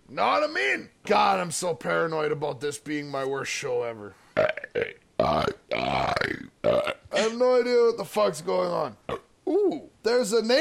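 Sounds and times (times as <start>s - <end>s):
speech: 0.1s - 6.5s, 7.2s - 10.5s
man burping after drinking lager beer: 4.4s - 7.3s, 9.1s - 9.6s.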